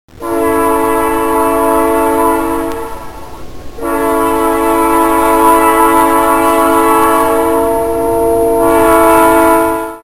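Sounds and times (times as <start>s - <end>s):
diesel engine: 0.1s - 9.8s.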